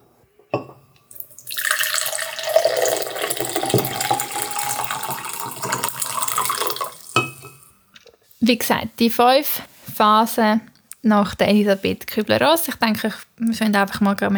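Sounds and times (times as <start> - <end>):
crockery clinking: 0.5 - 7.7
tea pouring into a cup: 1.1 - 7.7
speech: 8.5 - 14.3.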